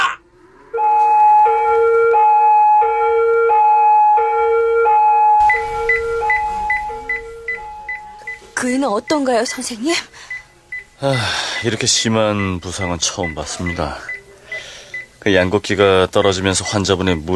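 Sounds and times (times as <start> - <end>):
two-tone hi-lo ambulance siren: 0.4 - 8.5
short chirping tones: 5.4 - 8.5
rumbling road noise: 5.4 - 9.4
speech: 9.0 - 10.3, 11.0 - 14.2, 15.2 - 17.3.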